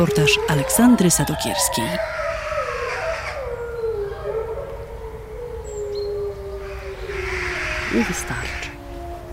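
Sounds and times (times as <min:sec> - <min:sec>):
speech: 0:00.0 - 0:02.2, 0:08.0 - 0:08.6
several wolves howling: 0:00.0 - 0:09.3.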